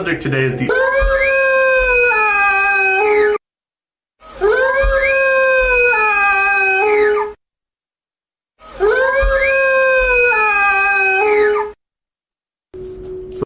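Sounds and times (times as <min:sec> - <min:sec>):
speech: 0:00.0 - 0:01.0
lab-recreated howler creature wailing howls: 0:00.7 - 0:03.4, 0:04.2 - 0:07.4, 0:08.6 - 0:11.8.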